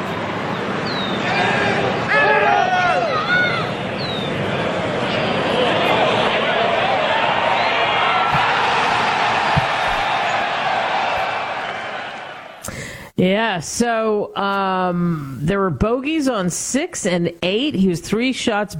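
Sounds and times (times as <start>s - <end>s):
large golf gallery cheering and shouting after a long putt: 0.2s - 12.7s
speech: 13.4s - 18.7s.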